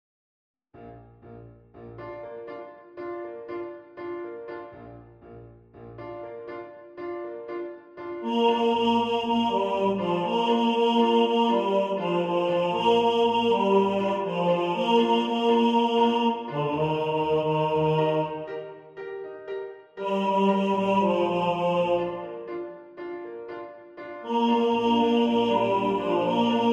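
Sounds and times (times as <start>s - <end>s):
second tenor singing: 8.2s - 18.9s, 20.0s - 22.8s, 24.2s - 26.7s.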